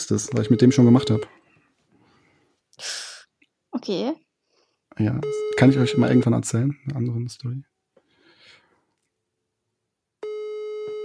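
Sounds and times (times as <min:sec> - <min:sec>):
speech: 0:00.0 - 0:01.4, 0:03.8 - 0:04.3, 0:05.0 - 0:07.7
loud steady electronic phone ringing tone, unanswered: 0:00.2 - 0:01.3, 0:05.2 - 0:06.4, 0:10.2 - 0:11.0.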